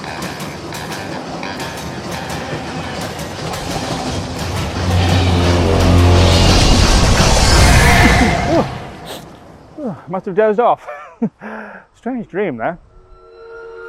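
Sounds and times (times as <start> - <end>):
train approaching on rails with rattling wheels: 0.0 - 9.9
speech: 10.1 - 12.9.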